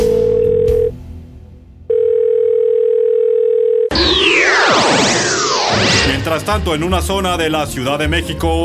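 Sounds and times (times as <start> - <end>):
telephone dial tone while placing a call: 0.1 - 0.9, 1.9 - 3.9
harsh swooping electronic screeching: 3.9 - 6.9
speech: 6.3 - 8.6.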